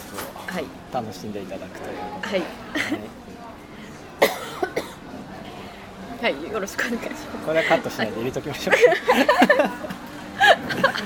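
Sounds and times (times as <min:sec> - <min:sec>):
speech: 0:00.5 - 0:03.5, 0:06.2 - 0:09.9
laughter: 0:02.4 - 0:03.2, 0:07.5 - 0:11.0
person coughing: 0:04.2 - 0:05.0.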